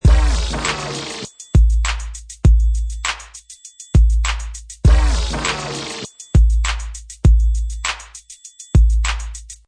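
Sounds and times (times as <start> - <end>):
vinyl scratch: 0.0 - 1.3, 4.9 - 6.1
hip hop beat: 0.0 - 9.6.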